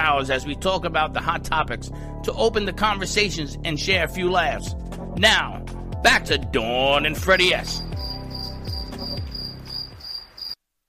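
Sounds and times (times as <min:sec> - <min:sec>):
speech: 0:00.0 - 0:07.8
crickets chirping: 0:07.3 - 0:10.6.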